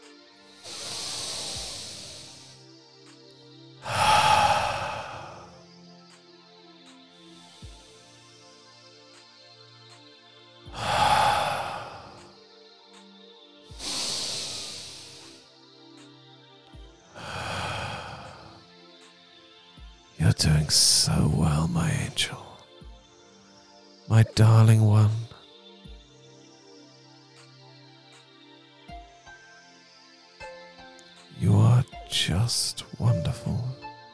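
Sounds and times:
slow deep breaths in and out: 0:00.7 - 0:02.5, 0:03.8 - 0:05.6, 0:10.8 - 0:12.3, 0:13.8 - 0:15.4, 0:17.2 - 0:18.6, 0:31.4 - 0:33.8
speech: 0:20.4 - 0:22.5, 0:24.1 - 0:25.2.

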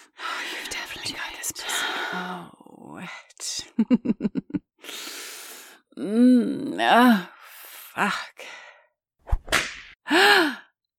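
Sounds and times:
speech: 0:03.8 - 0:04.4, 0:06.0 - 0:07.4, 0:08.0 - 0:08.5
whip crack: 0:09.3 - 0:10.0.

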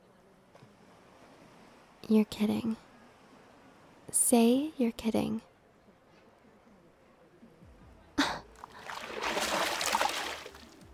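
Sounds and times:
speech: 0:02.1 - 0:02.9, 0:04.1 - 0:05.5
water splashing onto a person: 0:08.6 - 0:10.8.

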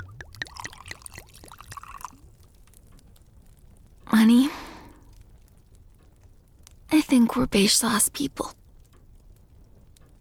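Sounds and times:
water pouring into a glass: 0:00.0 - 0:02.2
speech: 0:04.1 - 0:04.6, 0:07.1 - 0:08.6.

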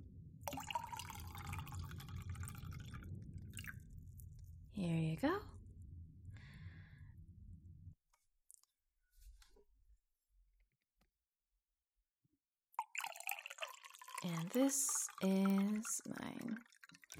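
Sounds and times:
drink pouring into two glasses: 0:00.5 - 0:03.9, 0:12.8 - 0:17.1
speech: 0:04.8 - 0:05.5, 0:14.6 - 0:16.7.

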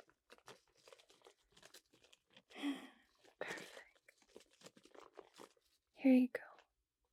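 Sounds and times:
small plastic cookie bag tearing open: 0:00.0 - 0:02.5, 0:03.5 - 0:05.7
small plastic bag of home-baked cookies crinkling: 0:00.0 - 0:05.8
speech: 0:06.0 - 0:06.5.

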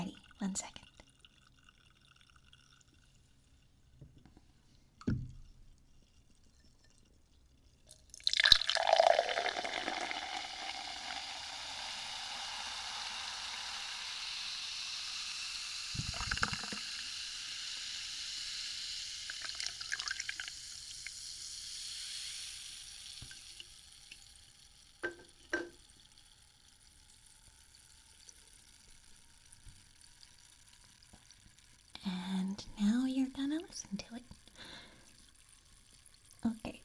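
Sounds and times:
fizzy drink splashing into a glass: 0:00.0 - 0:03.9, 0:05.3 - 0:32.2, 0:33.0 - 0:36.8
speech: 0:00.4 - 0:00.8, 0:33.7 - 0:34.0.

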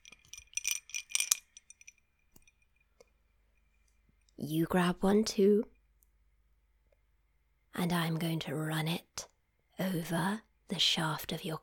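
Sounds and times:
ice cubes clinking and rattling against a glass: 0:00.0 - 0:02.5
speech: 0:04.4 - 0:05.8, 0:07.8 - 0:09.1, 0:09.8 - 0:11.6.

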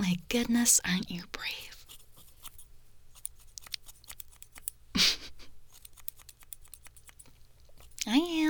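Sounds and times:
speech: 0:00.2 - 0:01.7
scissors snipping hair in a home haircut: 0:01.8 - 0:08.3.

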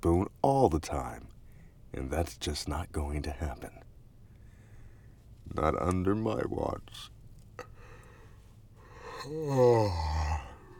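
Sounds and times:
speech: 0:00.0 - 0:01.3, 0:01.9 - 0:03.8, 0:05.5 - 0:07.1, 0:09.2 - 0:10.4
single human yawn: 0:09.0 - 0:10.7.

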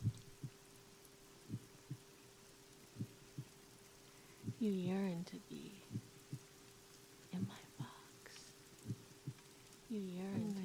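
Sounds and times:
slow steady heartbeat: 0:00.0 - 0:00.6, 0:01.5 - 0:02.1, 0:03.0 - 0:03.6, 0:04.4 - 0:04.7, 0:05.9 - 0:06.5, 0:07.4 - 0:08.0, 0:08.8 - 0:09.4
faint constant hum: 0:00.0 - 0:10.6
speech: 0:04.6 - 0:06.0, 0:09.9 - 0:10.6.

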